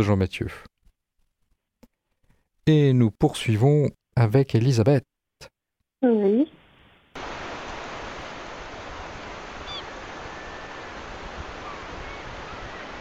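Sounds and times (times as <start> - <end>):
speech: 0.0 - 0.7, 2.6 - 6.6
sea surf breaking at Pointe du Raz in Brittany: 7.2 - 12.9.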